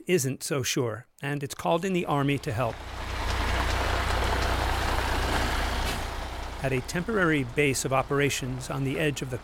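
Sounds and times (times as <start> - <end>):
speech: 0.0 - 3.0, 6.6 - 9.4
road noise: 1.9 - 9.4
red emergency trucks rumbling past a temporary base: 2.2 - 9.4.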